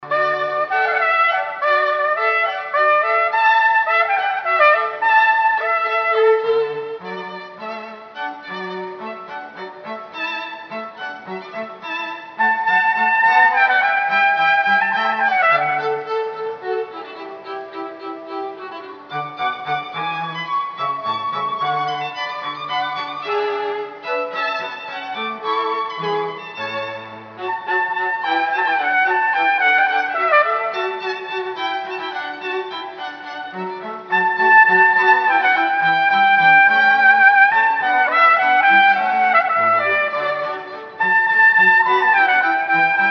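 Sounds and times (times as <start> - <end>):
trumpet playing a hornpipe: 0.0 - 7.0, 12.4 - 16.1, 27.5 - 31.2, 34.1 - 43.0
strings playing a hornpipe: 0.0 - 43.0.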